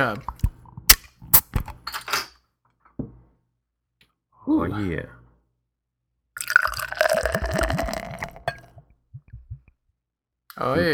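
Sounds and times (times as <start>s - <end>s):
speech: 0.0s - 0.3s, 4.6s - 5.2s, 10.6s - 10.9s
dark amber beer poured aggressively into a glass: 6.4s - 8.8s
scattered beer drips: 6.4s - 9.7s.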